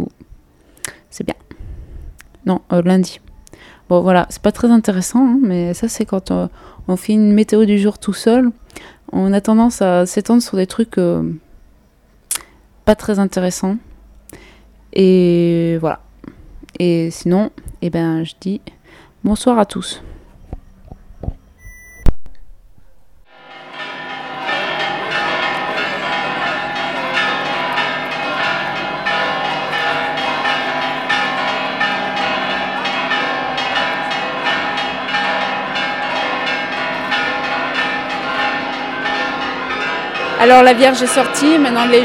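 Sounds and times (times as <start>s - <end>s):
speech: 1.1s - 1.4s, 2.5s - 3.3s, 3.9s - 11.4s, 12.9s - 16.1s, 16.8s - 20.1s, 40.4s - 42.0s
church carillon bells ringing in a dissonant peal during a procession: 23.3s - 42.0s.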